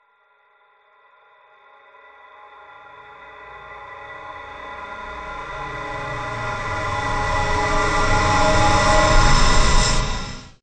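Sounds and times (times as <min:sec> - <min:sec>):
evil sweep horror atmosphere effect: 0:04.4 - 0:10.6.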